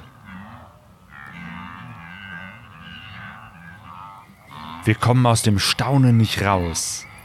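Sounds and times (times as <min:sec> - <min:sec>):
herd of wildebeest calling during a great migration at sunrise: 0:00.0 - 0:07.2
speech: 0:04.8 - 0:07.1.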